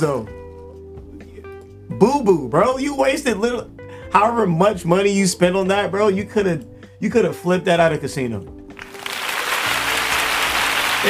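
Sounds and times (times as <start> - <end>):
speech: 0.0 - 0.4, 1.9 - 8.6
applause sound effect of dense crowd clapping: 8.8 - 11.0.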